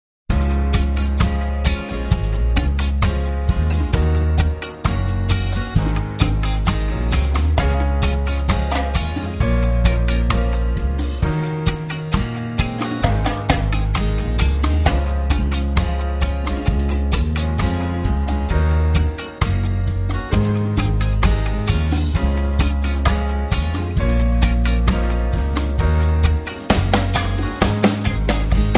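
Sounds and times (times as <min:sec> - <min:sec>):
soothing reggae jazz instrumental: 0:00.3 - 0:28.7.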